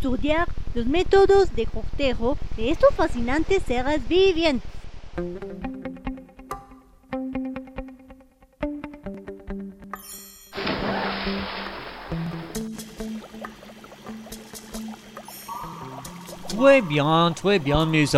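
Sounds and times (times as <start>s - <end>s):
speech: 0.0s - 5.7s, 16.6s - 18.1s
music: 5.2s - 18.1s
person diving into the ocean: 10.6s - 16.6s
rushing, bubbling wash of ocean water: 10.6s - 18.1s.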